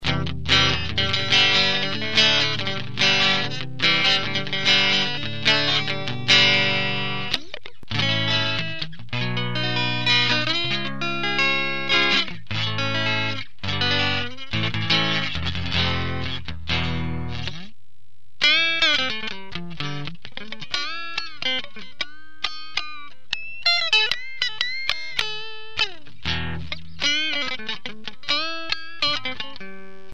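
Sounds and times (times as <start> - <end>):
clean electric guitar through ENGL amplifier: 0.0 - 30.1.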